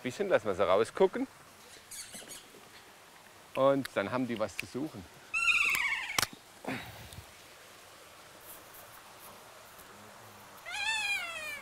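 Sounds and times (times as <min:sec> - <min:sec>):
speech: 0:00.0 - 0:01.5, 0:03.6 - 0:05.2, 0:06.6 - 0:06.9
steady hiss: 0:00.0 - 0:11.6
kea parrots screeching in an aviary in the snow: 0:01.7 - 0:02.5, 0:05.3 - 0:06.3, 0:10.6 - 0:11.6.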